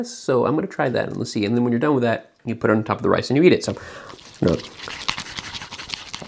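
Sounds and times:
speech: 0:00.0 - 0:05.1
chopsticks whipping sticky natto with soy sauce: 0:04.1 - 0:06.2.

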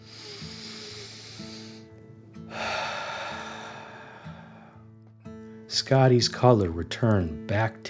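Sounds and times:
deep breathing in and out: 0:00.0 - 0:05.0
gentle sustained music: 0:00.0 - 0:07.8
speech: 0:05.7 - 0:07.8.

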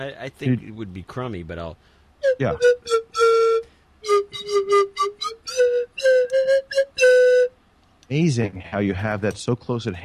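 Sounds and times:
speech: 0:00.0 - 0:03.3, 0:04.1 - 0:10.0
slide whistle playing a bouncy tune: 0:02.2 - 0:07.6.

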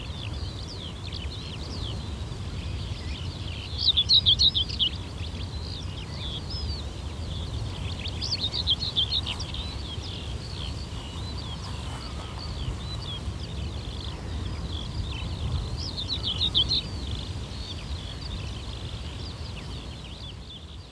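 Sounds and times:
bird chatter along the Omø coastline: 0:00.0 - 0:20.9
waves along the shore of the Omø coastline: 0:00.0 - 0:20.9.

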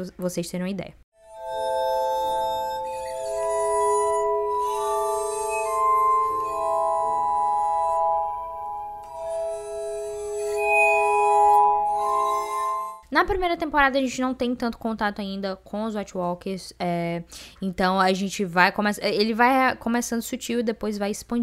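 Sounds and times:
speech: 0:00.0 - 0:01.0, 0:13.2 - 0:21.4
glass harmonica playing sustained chords: 0:01.2 - 0:13.0.

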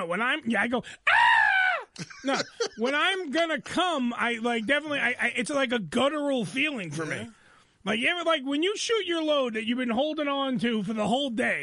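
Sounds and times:
speech: 0:00.0 - 0:01.2, 0:02.0 - 0:11.6
person imitating a loud high-pitched scream: 0:01.0 - 0:02.0
laughter: 0:02.0 - 0:03.2.

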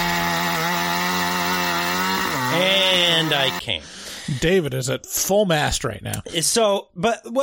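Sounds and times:
chainsaw engine running: 0:00.0 - 0:03.6
speech: 0:02.6 - 0:07.4.

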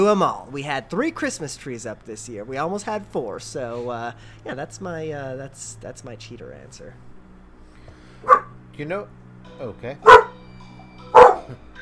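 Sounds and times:
speech: 0:00.0 - 0:07.1, 0:08.2 - 0:10.2, 0:11.5 - 0:11.7
single sharp dog bark: 0:08.2 - 0:08.6, 0:10.0 - 0:10.4, 0:11.1 - 0:11.6
faint trailing dog whimper: 0:10.1 - 0:10.4.

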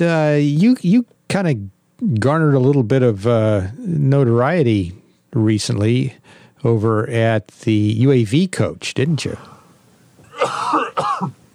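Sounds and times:
speech: 0:00.0 - 0:09.5
rough raspy throat clearing: 0:10.2 - 0:11.4
coughing: 0:10.2 - 0:11.5.

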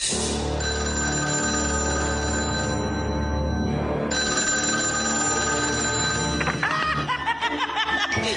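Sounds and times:
telephone bell ringing loudly: 0:00.4 - 0:07.1
snickering laughter: 0:06.4 - 0:08.3.

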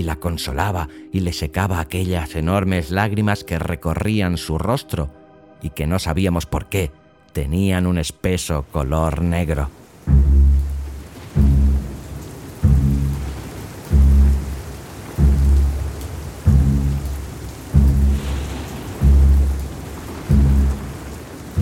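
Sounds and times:
speech: 0:00.0 - 0:10.5
steady rain hissing: 0:08.7 - 0:21.6
deep rolling rumbles of thunder: 0:10.0 - 0:21.6.

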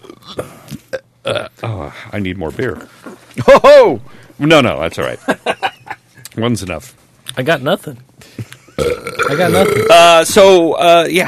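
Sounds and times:
person belching loudly: 0:00.0 - 0:01.6, 0:08.8 - 0:10.2
speech: 0:01.3 - 0:05.4, 0:06.4 - 0:08.1, 0:09.3 - 0:11.2.

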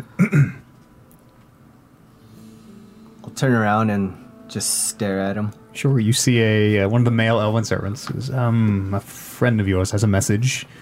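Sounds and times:
person clearing throat: 0:00.0 - 0:00.7
speech: 0:03.4 - 0:10.7.

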